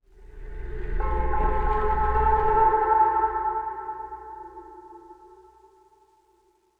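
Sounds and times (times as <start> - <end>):
dark ambient sting: 0.2 - 5.8.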